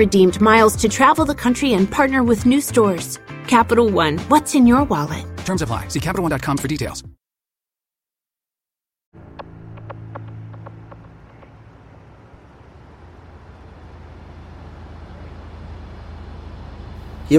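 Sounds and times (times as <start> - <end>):
speech: 0.0 - 7.2
car engine running as the vehicle arrives: 9.2 - 17.3.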